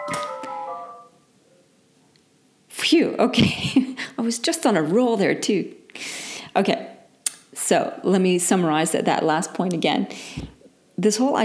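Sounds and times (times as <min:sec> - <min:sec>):
telephone in a home office ringing with electronic melodic chime: 0:00.0 - 0:01.1
speech: 0:02.9 - 0:06.9, 0:07.7 - 0:11.4.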